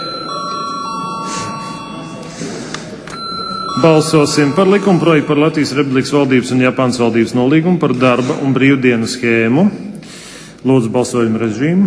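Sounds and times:
electronic parliamentary voting bell ringing: 0.0 - 6.1
room noise: 0.0 - 11.8
speech: 3.8 - 9.9, 10.6 - 11.8.

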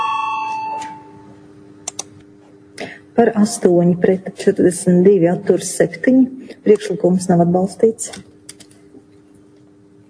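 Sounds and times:
parliamentary bell ringing to call a vote: 0.0 - 1.2
speech: 3.2 - 8.3.

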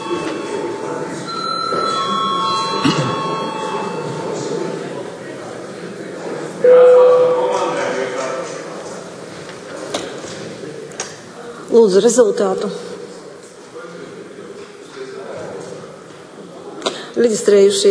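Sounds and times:
electric bell or buzzer ringing in a parliament chamber: 0.0 - 5.1, 6.6 - 8.2
murmur of voices in a parliament chamber: 0.0 - 17.8
speech: 11.8 - 12.9, 17.2 - 17.8.

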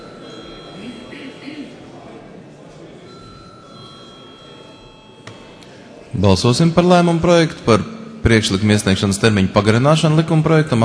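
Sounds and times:
voting call bell ringing in parliament hall: 0.0 - 1.1, 3.1 - 5.8
low murmur of voices in a large hall: 0.0 - 10.8
speech: 6.2 - 10.8.

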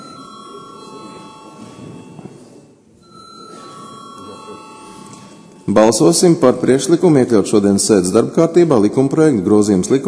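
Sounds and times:
electric bell ringing in a parliament chamber before a vote: 0.0 - 2.4, 3.0 - 6.2
faint noise: 0.0 - 10.0
speech: 5.7 - 10.0.

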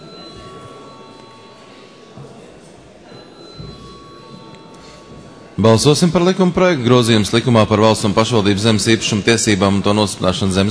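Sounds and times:
continuous electric bell ringing in a parliament chamber before a vote: 0.0 - 6.2
speech: 5.6 - 10.6.

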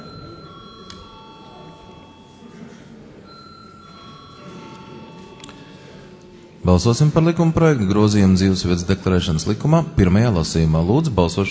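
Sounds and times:
parliament chamber bell ringing to call a vote: 0.0 - 8.3
murmur of voices: 0.0 - 11.4
room noise: 0.0 - 11.4
speech: 6.6 - 11.4.

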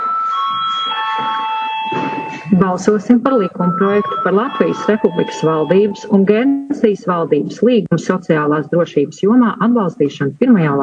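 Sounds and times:
bell rung in a parliament chamber before a vote: 0.0 - 6.7
speech: 2.5 - 10.8.

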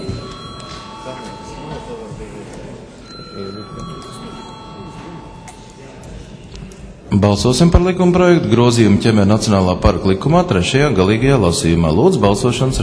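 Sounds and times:
parliament chamber electric bell ringing to summon members to a vote: 0.0 - 2.4, 3.0 - 6.3
faint murmur of room noise and voices: 0.0 - 12.8
speech: 3.4 - 5.3, 7.1 - 12.8.

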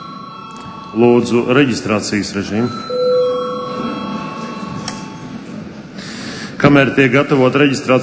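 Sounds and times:
parliament session bell ringing for break: 0.0 - 5.7
speech: 0.9 - 3.1, 6.7 - 8.0.

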